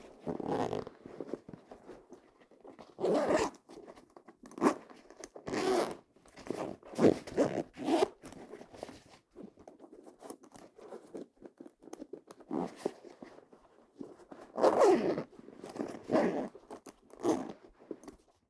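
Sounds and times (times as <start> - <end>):
backpack zipping up: 0.4 - 0.9, 3.0 - 3.5, 5.5 - 5.9, 6.6 - 8.1, 14.6 - 15.2, 15.9 - 16.5, 17.2 - 17.5.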